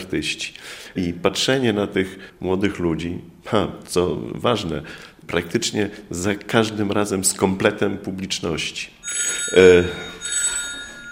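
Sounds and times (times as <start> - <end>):
speech: 0.1 - 10.2
telephone ringing with a bright electronic tone: 9.0 - 11.1.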